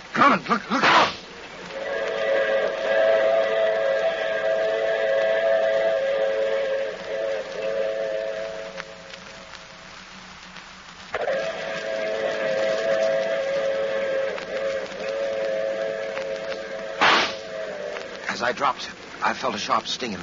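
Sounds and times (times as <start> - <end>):
speech: 0.2 - 1.2, 18.7 - 20.2
sharp crack: 0.7 - 1.4, 12.8 - 19.1
train whistle droning at a station platform: 1.7 - 9.4, 11.2 - 18.5.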